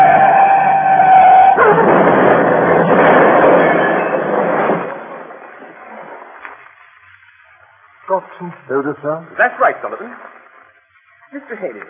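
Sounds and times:
harsh broad rushing roar of a Daimler car driving fast downhill: 0.0s - 6.2s
Daimler car engine whine driving fast downhill at night on a slippery road: 0.0s - 8.1s
speech: 8.7s - 10.4s, 11.3s - 11.8s.

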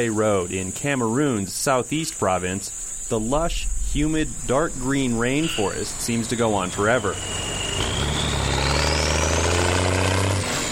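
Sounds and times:
speech: 0.0s - 7.9s
heavy logging truck engine driving past on a road: 3.0s - 10.7s.

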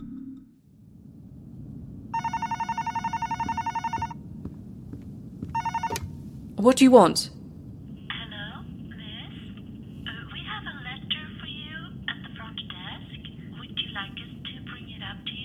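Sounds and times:
low hum: 0.4s - 15.4s
old-style telephone bell ringing in rapid trilling bursts: 2.1s - 4.2s, 5.5s - 6.1s
speech: 6.6s - 7.3s.

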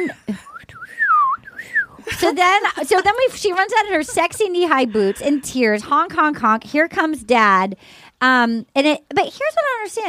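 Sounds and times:
speech: 0.0s - 0.6s, 2.2s - 10.0s
person whistling a short wavering tune: 0.4s - 2.0s
laughter: 2.0s - 6.5s.

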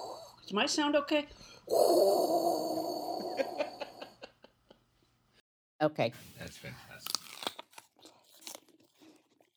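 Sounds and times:
speech: 0.5s - 3.6s, 5.8s - 7.2s
laughter: 2.7s - 4.8s
person eating something crisp: 6.9s - 9.5s.

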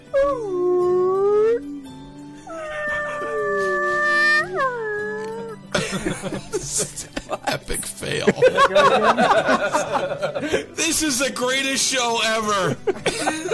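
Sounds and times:
speech: 0.2s - 0.7s, 8.1s - 13.5s
person imitating a whale call with wavering moans: 0.2s - 1.9s, 2.5s - 5.6s
laughter: 5.7s - 10.8s, 12.7s - 13.5s.

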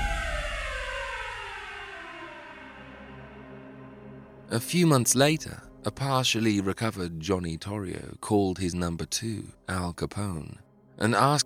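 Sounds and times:
police car siren wailing: 0.0s - 4.0s
speech: 4.5s - 11.4s.

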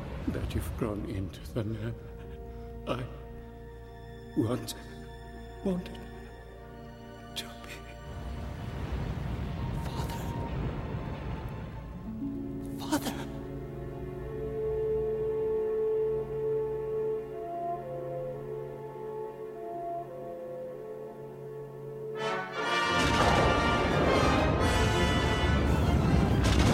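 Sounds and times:
speech: 0.3s - 2.1s, 2.9s - 3.2s, 4.4s - 4.9s, 5.6s - 6.1s
soft sustained orchestral tones: 5.5s - 26.7s
loud booming sci-fi space battle explosion with crackling rumble: 23.0s - 26.7s.

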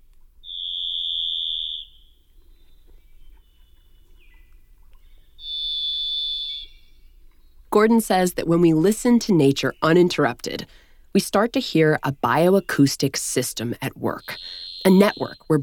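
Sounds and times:
thrush singing long pure whistled notes: 0.4s - 7.8s, 14.0s - 15.6s
speech: 7.7s - 15.6s.

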